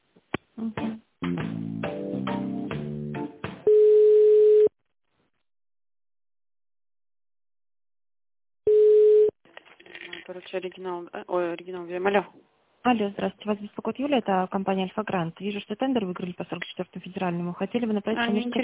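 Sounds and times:
speech: 0.6s - 1.5s, 10.6s - 18.6s
steady telephone line tones during a call transfer: 3.7s - 4.7s, 8.7s - 9.3s.

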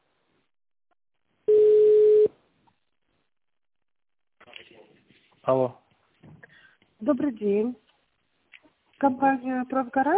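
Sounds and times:
telephone line tone while waiting to connect to an operator: 1.5s - 2.3s
speech: 5.5s - 5.8s, 7.0s - 7.8s, 9.0s - 10.1s.

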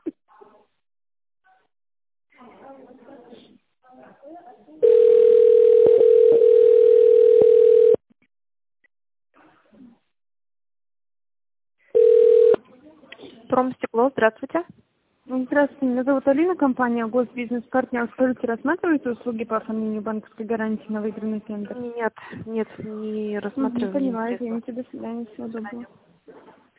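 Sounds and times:
loud steady telephone tone: 4.8s - 8.0s, 11.9s - 12.6s
speech: 13.6s - 26.0s.

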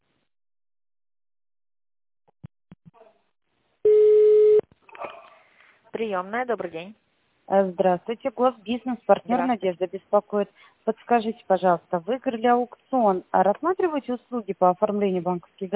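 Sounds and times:
telephone line tones during an office call transfer: 3.9s - 4.6s
speech: 6.0s - 15.7s.

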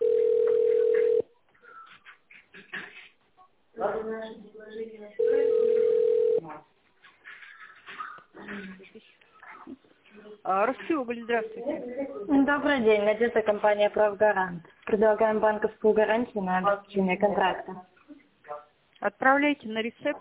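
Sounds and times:
telephone ringback tone while a call is transferred to a secretary: 0.0s - 1.2s, 5.2s - 6.4s
speech: 10.5s - 17.9s, 19.0s - 20.1s.

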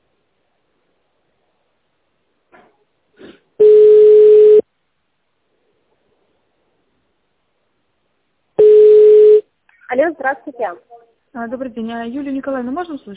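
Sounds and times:
telephone ringback tone during call transfer to operator: 3.6s - 4.6s, 8.6s - 9.4s
speech: 9.9s - 13.1s.

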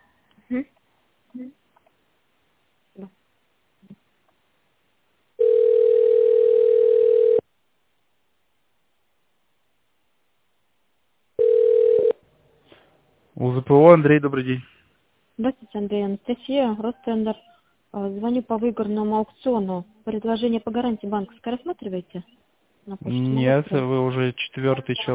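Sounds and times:
speech: 0.5s - 1.6s, 3.0s - 3.2s, 13.4s - 14.8s, 15.4s - 25.1s
telephone line tone while a call is transferred: 5.4s - 7.4s, 11.4s - 12.2s.

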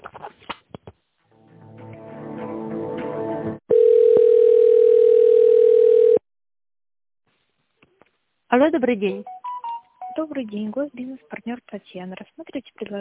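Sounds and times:
steady single-pitched telephone line tone while a call is transferred: 3.7s - 6.2s
speech: 8.6s - 9.3s, 10.2s - 12.9s.

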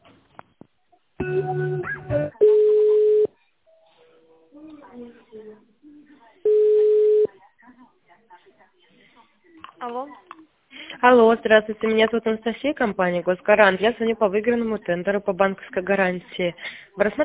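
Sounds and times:
telephone line beeps during office call transfer: 2.4s - 3.3s, 6.5s - 7.3s
speech: 11.1s - 17.2s.

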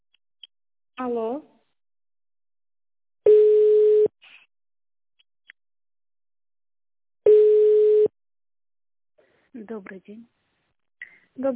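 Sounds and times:
speech: 1.0s - 1.5s, 9.5s - 10.4s, 11.4s - 11.5s
ringback tone of an outgoing phone call to a company: 3.2s - 4.1s, 7.2s - 8.1s.

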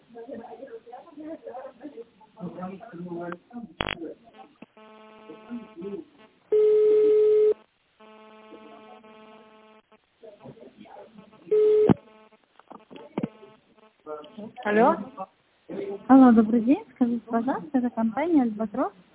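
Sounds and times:
speech: 2.6s - 4.0s, 16.3s - 19.1s
telephone line hum: 3.8s - 17.1s
telephone line tones as a call is transferred at a company: 6.5s - 9.8s, 11.4s - 12.4s.

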